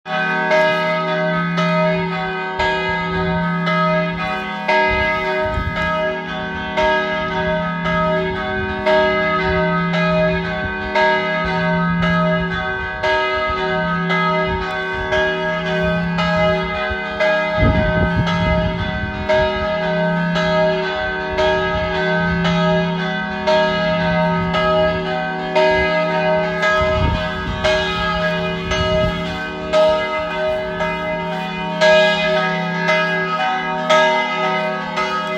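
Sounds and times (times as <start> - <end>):
Slovenian church bells ringing: 0.0 - 35.3.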